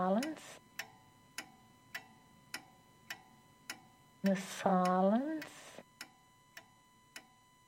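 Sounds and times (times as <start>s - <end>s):
speech: 0.0s - 0.7s, 4.2s - 5.6s
soft clock ticks: 0.0s - 7.3s.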